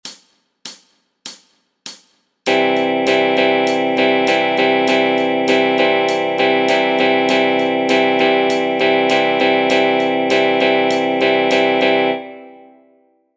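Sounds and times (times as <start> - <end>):
drums: 0.0 - 11.8
guitar strumming pattern: 2.5 - 12.8.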